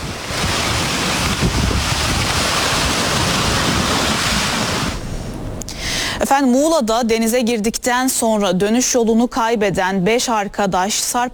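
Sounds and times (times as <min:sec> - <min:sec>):
floodwater from a sudden heavy downpour rushing through a neighbourhood street: 0:00.0 - 0:05.4
wind buffeting a mobile phone microphone: 0:00.0 - 0:05.6
speech: 0:06.2 - 0:11.3.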